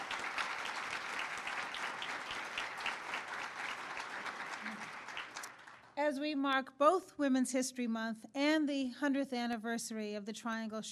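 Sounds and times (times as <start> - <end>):
audience applause at a White House event: 0.0 - 6.0
speech: 6.0 - 10.9.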